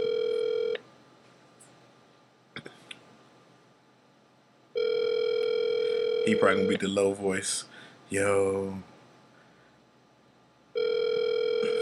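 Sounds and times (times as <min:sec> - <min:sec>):
telephone call electronic ring tone: 0:00.0 - 0:00.8, 0:04.8 - 0:06.8, 0:10.8 - 0:11.7
speech: 0:06.3 - 0:08.9.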